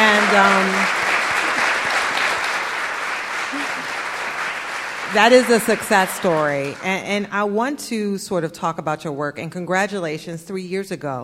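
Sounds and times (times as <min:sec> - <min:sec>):
audience applause: 0:00.0 - 0:07.1
speech: 0:00.3 - 0:01.0, 0:05.1 - 0:11.2.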